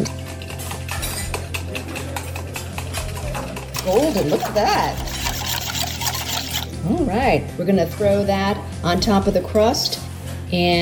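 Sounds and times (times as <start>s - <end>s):
metal whisk scraping and clinking against a bowl mixing maple syrup and tapioca flour filling: 1.5s - 6.7s
speech: 3.9s - 5.2s, 6.8s - 10.7s.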